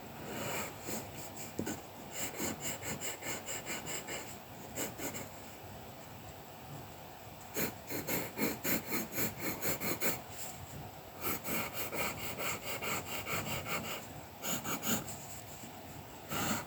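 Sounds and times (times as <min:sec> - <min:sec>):
colouring pencil strokes scratching across paper: 0:00.2 - 0:05.3, 0:07.5 - 0:10.2, 0:11.2 - 0:15.5, 0:16.3 - 0:16.6.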